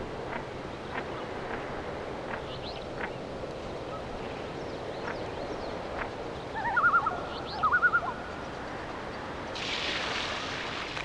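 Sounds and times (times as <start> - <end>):
steady background noise: 0.0 - 11.0
Mergus serrator red-breasted merganser calls: 6.5 - 8.2.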